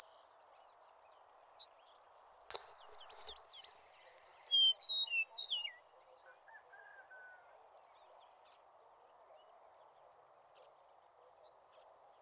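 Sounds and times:
Eastern meadowlark singing: 2.5 - 5.8.

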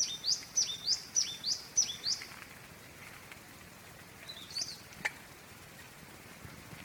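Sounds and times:
spotted scrubwren calls: 0.0 - 2.3
light background hiss: 0.0 - 6.8.

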